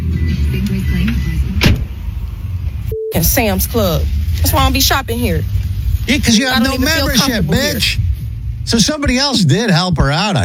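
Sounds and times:
car engine rumbling steadily: 0:00.0 - 0:10.4
sharp thump or clunk: 0:01.6 - 0:02.0
speech: 0:03.2 - 0:08.0, 0:08.7 - 0:10.4.

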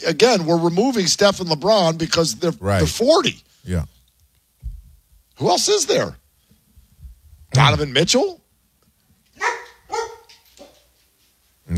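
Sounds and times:
speech: 0:00.0 - 0:04.0, 0:05.4 - 0:06.2, 0:07.6 - 0:08.4
female dog barking: 0:09.4 - 0:10.9.

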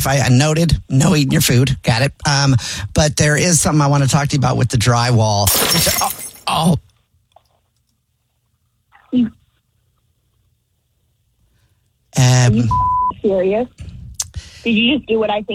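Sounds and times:
speech: 0:00.0 - 0:06.9, 0:09.1 - 0:09.4, 0:12.2 - 0:13.9, 0:14.6 - 0:15.5
glass crashing and shattering: 0:05.4 - 0:06.6.

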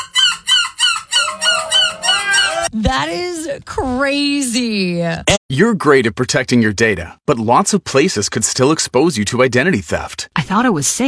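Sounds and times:
person imitating a seagull call: 0:00.2 - 0:02.8
speech: 0:02.8 - 0:11.0.

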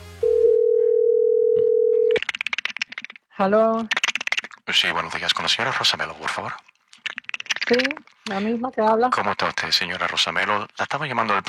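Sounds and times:
telephone dial tone while a call is placed: 0:00.2 - 0:02.2
speech: 0:03.4 - 0:04.0, 0:04.7 - 0:06.7, 0:07.7 - 0:11.4.

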